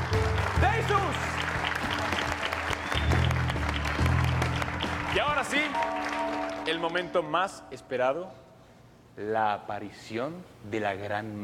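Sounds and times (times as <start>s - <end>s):
audience applauding at a magic show: 0.0s - 6.9s
speech: 5.2s - 8.5s, 9.2s - 11.4s.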